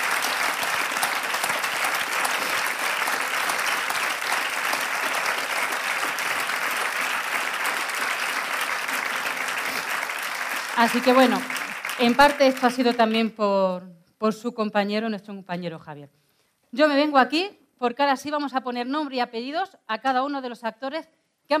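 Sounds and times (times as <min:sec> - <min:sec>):
audience applause for the cast of a radio adaptation: 0:00.0 - 0:13.0
speech: 0:10.8 - 0:21.5.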